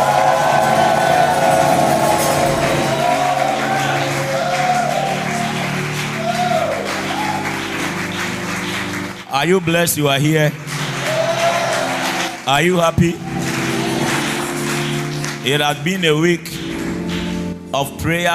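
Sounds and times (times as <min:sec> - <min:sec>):
crowd shouting in a large room: 0:00.0 - 0:07.5, 0:11.0 - 0:12.4
crowd applause in a large room: 0:00.0 - 0:15.8, 0:16.6 - 0:17.4
speech: 0:09.4 - 0:10.8, 0:12.5 - 0:13.5, 0:15.4 - 0:16.6, 0:17.8 - 0:18.3.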